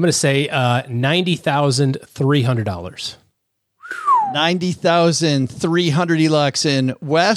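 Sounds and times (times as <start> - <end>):
speech: 0.0 - 3.2, 4.3 - 7.3
person whistling a falling note: 3.8 - 4.6.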